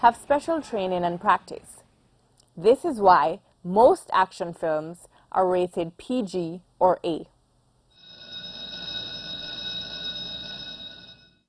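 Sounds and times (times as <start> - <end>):
speech: 0.0 - 1.8, 2.6 - 7.3
bright bell ringing with a shrill rattling tone: 8.0 - 11.4.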